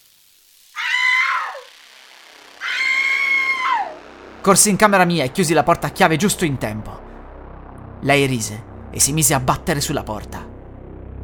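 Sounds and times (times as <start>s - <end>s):
grandmother screaming while chasing someone: 0.8s - 1.7s, 2.6s - 4.0s
speech: 4.4s - 7.0s, 8.0s - 10.6s.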